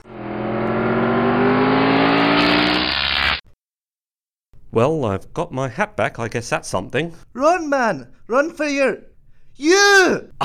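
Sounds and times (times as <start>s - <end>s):
DeLorean car engine revving and accelerating away: 0.0s - 3.4s
speech: 4.7s - 10.4s.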